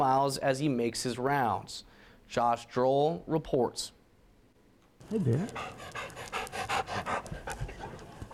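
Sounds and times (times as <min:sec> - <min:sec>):
speech: 0:00.0 - 0:04.0, 0:05.1 - 0:06.4
school therapy dog panting at a high school in Arkansas: 0:05.0 - 0:08.3.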